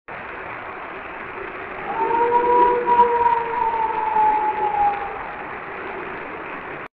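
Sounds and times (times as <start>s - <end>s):
animal howling in Florida: 1.8s - 6.5s.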